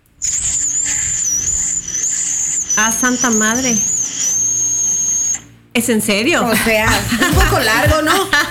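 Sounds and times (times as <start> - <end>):
loud sustained human whistle as a family call signal: 0.2 - 5.6
speech: 2.8 - 3.9, 5.8 - 8.5
laughter: 6.5 - 8.5.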